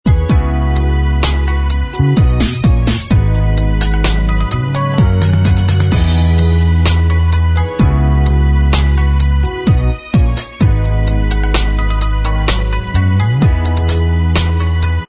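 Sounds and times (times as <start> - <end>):
instrumental backing track: 0.0 - 15.0.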